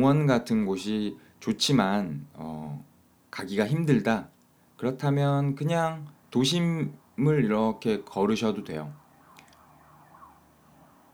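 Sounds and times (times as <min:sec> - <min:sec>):
speech: 0:00.0 - 0:09.0
low hum: 0:00.0 - 0:11.1
police siren: 0:06.0 - 0:11.1.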